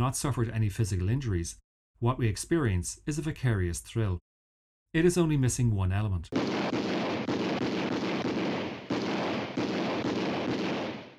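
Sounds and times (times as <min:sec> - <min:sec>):
speech: 0:00.0 - 0:04.3, 0:04.9 - 0:06.5
loud dense gunfire from a sound film: 0:06.4 - 0:11.1.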